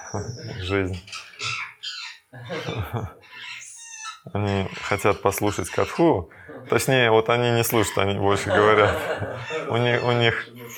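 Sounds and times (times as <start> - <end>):
parakeets squawking: 0.0 - 10.7
speech: 0.1 - 1.3, 2.3 - 3.2, 4.2 - 10.7
laughter: 2.3 - 3.2, 8.1 - 10.7.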